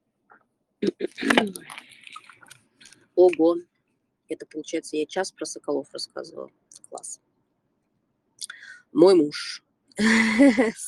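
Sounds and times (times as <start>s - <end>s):
speech: 0.8s - 1.8s, 3.2s - 3.7s, 4.3s - 7.2s, 8.9s - 10.8s
quiet mouth noise: 0.8s - 2.5s
short slurping sip of water and swallow: 1.1s - 2.6s
soft wet mouth clicks: 1.5s - 3.4s.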